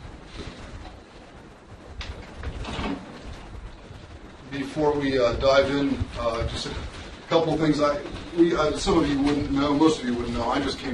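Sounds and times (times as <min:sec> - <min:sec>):
steady room noise: 0:00.0 - 0:10.9
sliding door thudding shut: 0:02.5 - 0:03.2
speech: 0:04.6 - 0:10.9.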